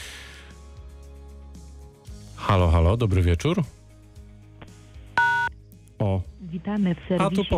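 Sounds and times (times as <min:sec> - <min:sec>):
speech: 0:02.4 - 0:03.8, 0:06.5 - 0:07.5
short electronic beep over a phone line signalling an incoming SMS: 0:05.2 - 0:05.5.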